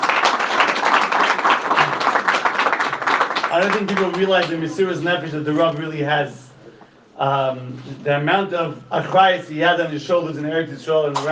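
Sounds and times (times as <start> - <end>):
audience applause at a religious gathering honoring a rabbi: 0.0 - 5.0
speech: 3.6 - 6.4, 7.2 - 11.3.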